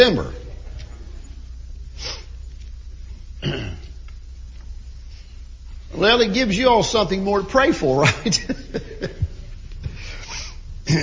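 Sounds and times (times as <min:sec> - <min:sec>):
speech: 0:00.0 - 0:00.4, 0:03.4 - 0:03.8, 0:05.9 - 0:09.2, 0:10.9 - 0:11.0
low steady hum: 0:00.0 - 0:11.0
rough coughs: 0:03.4 - 0:04.0
laughter: 0:08.0 - 0:09.8.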